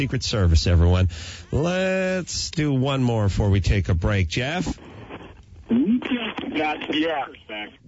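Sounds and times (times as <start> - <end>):
speech: 0.0 - 4.9, 6.6 - 7.8
caller's radio playing through a phone line: 4.4 - 7.8.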